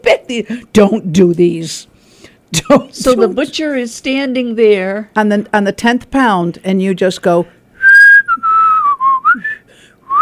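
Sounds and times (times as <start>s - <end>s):
speech: 0.1s - 1.9s, 2.5s - 7.6s
person whistling a short wavering melody while walking away: 7.8s - 10.2s.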